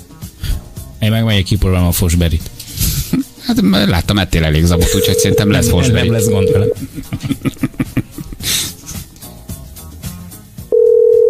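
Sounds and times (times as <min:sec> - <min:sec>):
speech: 0:01.0 - 0:02.6, 0:03.4 - 0:07.5
telephone ringing in short pulses: 0:04.8 - 0:06.8, 0:10.7 - 0:11.2
laughter: 0:05.4 - 0:09.1.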